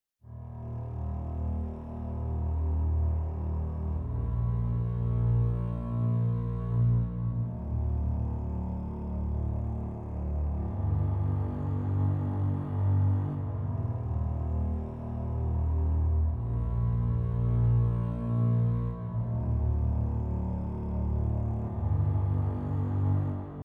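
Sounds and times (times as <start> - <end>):
suspenseful cello music: 0.2 - 23.6.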